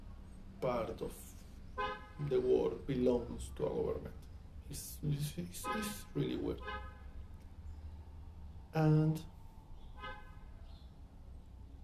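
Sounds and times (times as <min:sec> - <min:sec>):
low traffic rumble: 0:00.0 - 0:11.8
speech: 0:00.6 - 0:06.9, 0:08.7 - 0:09.4
short car horn toot on a street: 0:01.8 - 0:02.3, 0:05.6 - 0:07.1, 0:10.0 - 0:10.4.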